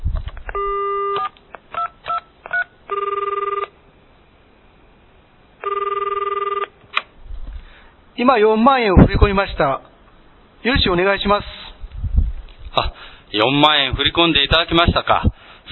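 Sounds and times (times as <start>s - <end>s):
telephone keypad dialing beeps: 0.5s - 3.7s
long electronic telephone rings over a phone line: 0.5s - 3.8s, 5.6s - 6.8s
speech: 8.2s - 9.9s, 10.6s - 11.5s, 12.8s - 15.3s.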